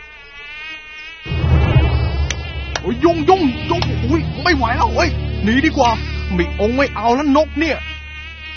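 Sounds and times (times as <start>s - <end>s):
swarm of many mosquitoes buzzing: 0.0s - 1.3s, 2.8s - 8.5s
speech: 2.9s - 7.9s.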